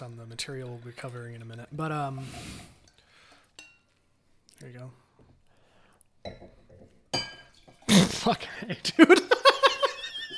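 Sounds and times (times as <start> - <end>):
speech: 0.0 - 2.8, 4.6 - 5.0, 6.2 - 7.3, 8.2 - 9.4
glasses clinking: 2.8 - 4.0, 6.2 - 7.9.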